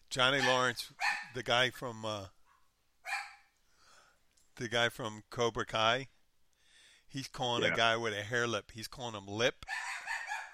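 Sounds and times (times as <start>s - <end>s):
speech: 0.2s - 2.4s, 4.6s - 6.2s, 7.1s - 9.8s
dog giving a soft faint yelp: 0.4s - 1.3s, 3.1s - 3.5s, 9.7s - 10.5s
dog barking: 0.4s - 1.4s, 2.5s - 3.5s, 9.7s - 10.5s.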